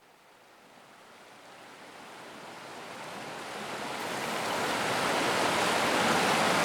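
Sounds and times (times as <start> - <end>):
rushing water of a river: 0.0 - 6.6.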